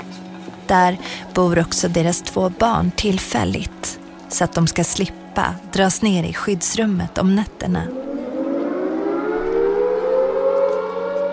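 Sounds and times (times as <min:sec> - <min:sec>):
speech: 0:00.7 - 0:08.0
air raid sirens wailing across a city: 0:07.5 - 0:11.3.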